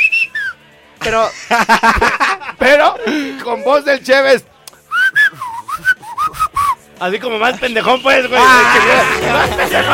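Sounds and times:
person whistling a short lilting call: 0.0s - 0.6s, 4.9s - 6.8s
speech: 1.0s - 4.5s, 7.0s - 9.9s
laughter: 1.3s - 3.4s, 8.3s - 9.9s.

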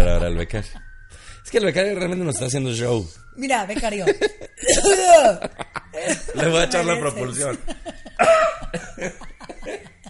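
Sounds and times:
speech: 0.3s - 9.9s
laughter: 4.0s - 10.0s
person coughing harshly: 4.6s - 5.1s, 8.1s - 8.9s.

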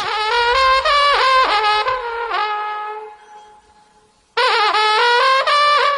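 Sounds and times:
trembita Carpathian alpine horn blowing bright bending notes: 0.0s - 5.9s.

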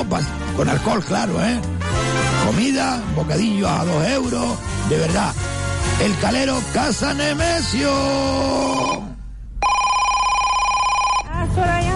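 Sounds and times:
speech: 0.1s - 9.1s
electronic telephone ringing with an incoming call to a radio show: 8.5s - 11.4s.

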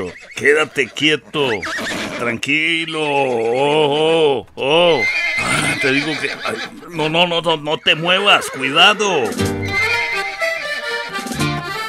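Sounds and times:
horse whinnying loudly and shrilly: 0.0s - 7.6s, 8.5s - 10.5s
speech: 0.0s - 9.6s.

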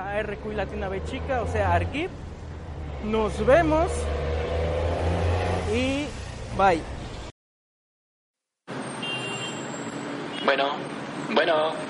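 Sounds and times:
road traffic with engine rumble and tire hiss: 0.0s - 7.3s, 8.7s - 11.8s
speech: 0.2s - 2.3s, 3.0s - 4.3s, 5.7s - 7.0s, 10.5s - 11.8s.

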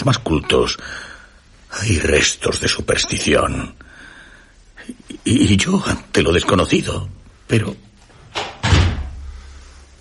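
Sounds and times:
speech: 0.0s - 1.1s, 1.7s - 3.8s, 4.8s - 8.5s
door pulled shut with a heavy slam: 8.3s - 9.2s.

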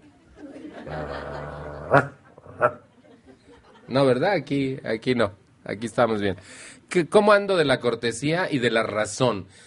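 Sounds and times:
faint laughter-like noises: 0.0s - 3.9s
person imitating a dog growling: 0.8s - 2.8s
speech: 0.9s - 2.2s, 3.9s - 9.6s
person imitating a dog barking: 1.1s - 2.8s.

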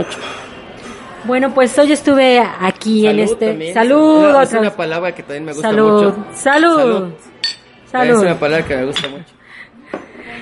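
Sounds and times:
speech: 0.0s - 0.4s, 1.2s - 7.3s, 7.9s - 9.4s
steady murmur of chatter in a busy bar: 0.0s - 10.4s
sharp clink of dishes in a bar: 7.4s - 7.7s.

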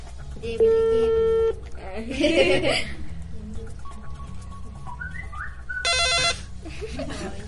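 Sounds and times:
low hum: 0.0s - 7.4s
speech: 0.4s - 0.9s, 2.0s - 3.0s
laughter: 2.1s - 3.1s, 6.6s - 7.4s
mobile phone ringtone playing an electronic melody: 5.8s - 6.5s.

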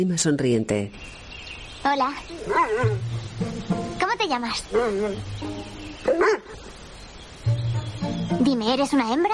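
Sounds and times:
speech: 0.0s - 1.2s, 1.8s - 6.7s, 8.3s - 9.3s
low steady hiss: 0.0s - 9.3s
dog barking: 2.5s - 3.0s, 6.0s - 6.6s.

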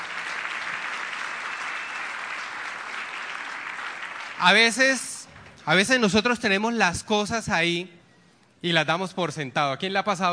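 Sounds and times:
audience applause: 0.0s - 5.6s
speech: 4.4s - 8.0s, 8.6s - 10.3s.

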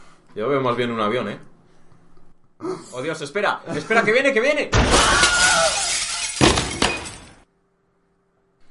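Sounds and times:
speech: 0.4s - 1.5s, 2.6s - 5.4s
window glass shattering: 4.8s - 7.4s
falling glass shards and tinkling debris: 5.3s - 7.4s.

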